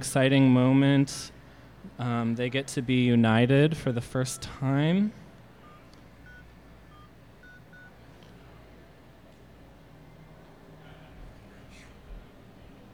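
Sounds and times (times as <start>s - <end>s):
speech: 0.0s - 5.2s
steady low rumble and hiss: 0.0s - 12.9s
phone keypad dialing tones: 5.6s - 8.0s.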